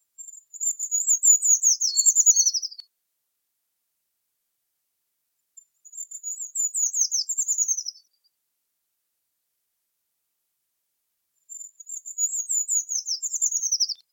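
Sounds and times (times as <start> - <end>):
treecreeper singing: 0.2 - 2.9, 5.6 - 8.3, 11.4 - 14.1.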